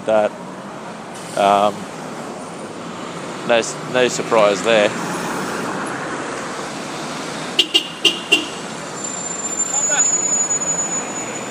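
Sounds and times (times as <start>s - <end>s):
speech: 0.0s - 0.5s, 1.2s - 2.0s, 3.5s - 5.1s
steady traffic noise and road rumble: 0.0s - 11.4s
bus and car horns honking in traffic: 7.3s - 11.4s.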